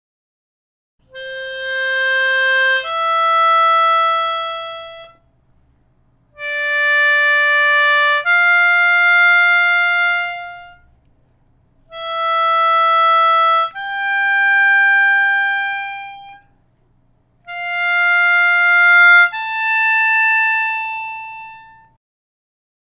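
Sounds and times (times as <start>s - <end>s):
harmonica playing simple legato note exercises: 1.1s - 5.2s, 6.3s - 10.9s, 11.9s - 16.6s, 17.4s - 22.0s.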